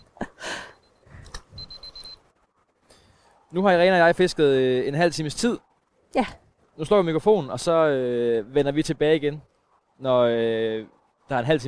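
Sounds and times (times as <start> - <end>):
wristwatch alarm beeping: 0.7 - 2.2
speech: 3.5 - 11.6.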